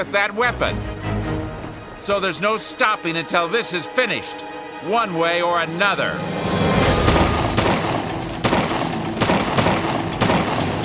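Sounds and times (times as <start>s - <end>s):
speech: 0.0s - 0.9s, 2.0s - 6.6s
sharp loud gunshots in a street shootout: 6.9s - 10.8s
steady dense rumble of gunfire in a street shootout: 7.1s - 10.8s.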